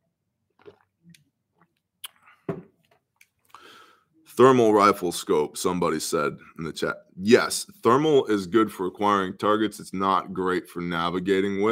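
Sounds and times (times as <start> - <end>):
person sipping water: 0.5 - 1.3, 2.0 - 2.5
person gulping water: 0.6 - 1.2
speech: 4.4 - 11.7.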